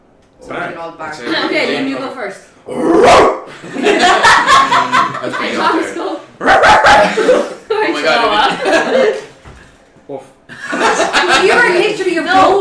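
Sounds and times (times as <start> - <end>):
speech: 0.6 - 9.2
person imitating a dog barking and yelping: 2.7 - 3.5, 6.4 - 7.6
laughter: 3.5 - 9.4, 10.5 - 12.6.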